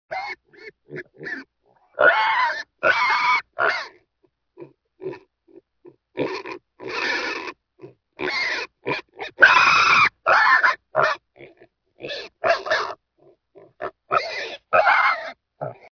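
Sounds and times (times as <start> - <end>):
pig squealing: 0.1 - 4.0, 6.2 - 7.6, 8.2 - 13.0, 13.6 - 15.9.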